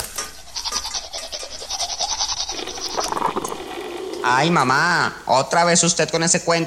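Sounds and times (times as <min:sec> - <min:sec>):
toothbrush scrubbing teeth: 0:00.0 - 0:05.2
splashing gurgling water rinsing mouth: 0:01.5 - 0:05.8
speech: 0:04.2 - 0:06.6.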